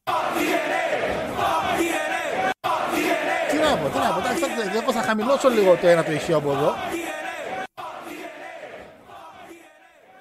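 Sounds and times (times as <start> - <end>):
large crowd shouting and chanting outside: 0.0 - 10.2
speech: 3.9 - 7.0.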